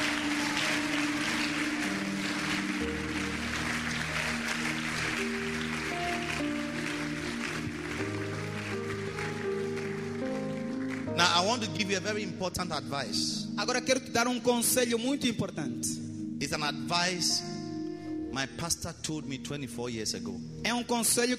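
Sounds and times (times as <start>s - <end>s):
audience clapping: 0.0s - 12.1s
sustained keyboard or organ chords: 0.0s - 21.3s
speech: 11.4s - 17.6s, 18.4s - 21.3s.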